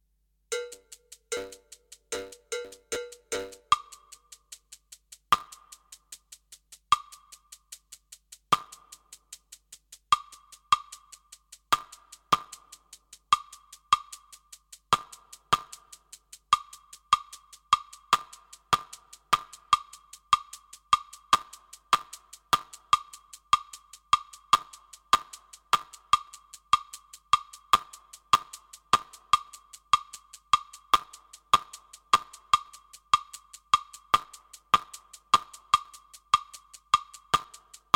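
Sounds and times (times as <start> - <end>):
fast tresillo rhythm: 0.5 - 37.9.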